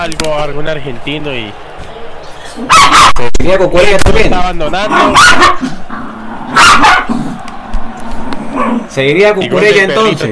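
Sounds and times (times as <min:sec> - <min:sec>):
speech: 0:00.0 - 0:01.7, 0:02.6 - 0:07.3, 0:08.9 - 0:10.3
small female dog barking and yapping: 0:04.9 - 0:05.7, 0:06.5 - 0:07.1.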